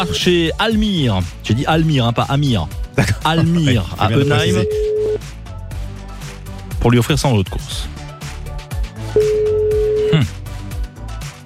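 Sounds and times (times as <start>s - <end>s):
speech: 0.0s - 5.3s, 6.8s - 7.9s, 9.2s - 9.4s
telephone line ringing before the call is answered: 4.2s - 5.2s, 9.2s - 10.2s.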